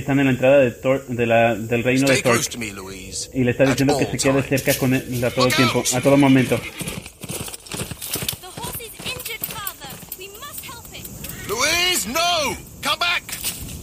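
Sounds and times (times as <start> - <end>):
speech: 0.0 - 7.1
horse hooves clip-clopping: 4.5 - 12.2
horse-like whinny: 5.2 - 7.1.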